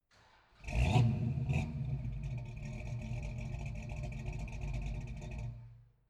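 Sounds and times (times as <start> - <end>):
Camaro engine starting and revving through the exhaust: 0.6 - 5.7.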